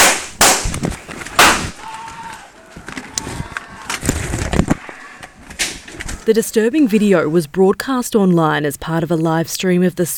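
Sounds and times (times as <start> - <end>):
gunshots: 0.0 - 1.9
people screaming and shouting: 1.6 - 5.6
speech: 6.3 - 10.1.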